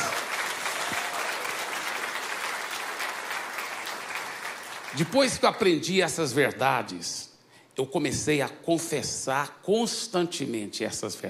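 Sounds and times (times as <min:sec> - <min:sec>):
sustained applause from a large audience: 0:00.0 - 0:05.2
speech: 0:04.9 - 0:11.2.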